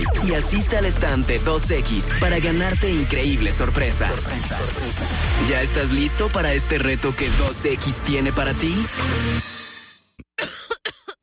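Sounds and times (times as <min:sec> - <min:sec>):
speech: 0:00.2 - 0:09.5
person coughing in short sharp bursts: 0:10.4 - 0:11.2.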